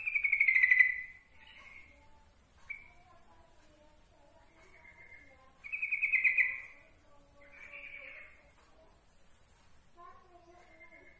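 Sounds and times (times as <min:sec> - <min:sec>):
yellow-vented bulbul song: 0:00.0 - 0:03.2, 0:04.4 - 0:08.5.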